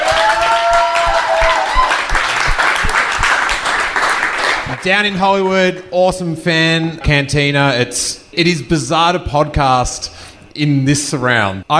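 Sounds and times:
tonal whistle or cheer: 0.0s - 2.6s
crowd applauding: 0.0s - 4.8s
speech: 4.8s - 11.7s.

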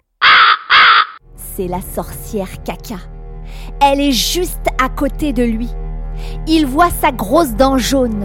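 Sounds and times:
crow cawing: 0.2s - 1.2s
speech: 1.6s - 8.2s.

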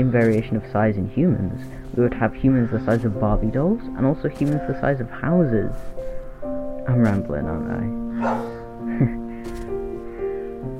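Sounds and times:
speech: 0.0s - 6.0s, 6.9s - 9.2s
dog barking: 8.2s - 8.6s.

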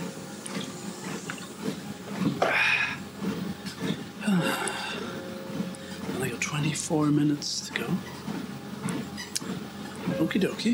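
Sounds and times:
steady low hum: 0.0s - 10.7s
person drinking water from a bottle during a walk: 1.3s - 6.1s
speech: 6.9s - 8.3s, 10.2s - 10.7s.

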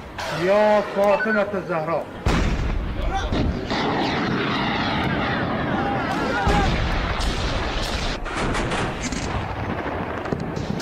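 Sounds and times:
speech: 0.3s - 2.4s
artillery fire on the coast during a naval exercise in the Persian Gulf: 2.2s - 10.8s
heavy booms: 2.2s - 10.8s
missile launches on the coast during a naval exercise in the Persian Gulf: 2.2s - 10.8s.

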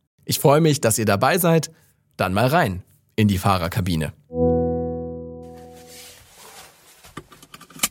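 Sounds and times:
speech: 0.3s - 4.2s
Volkswagen ID.3 electric car synthetic driving tone: 4.3s - 6.0s.

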